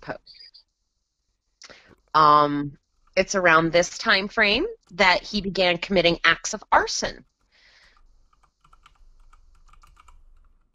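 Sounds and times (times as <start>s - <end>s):
speech: 2.2s - 7.3s
typing on a computer keyboard: 7.8s - 10.7s.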